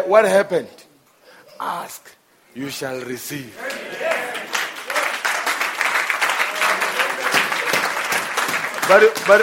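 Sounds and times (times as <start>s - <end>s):
speech: 0.0s - 0.8s, 1.6s - 4.3s, 8.9s - 9.4s
congregation clapping: 3.5s - 9.4s.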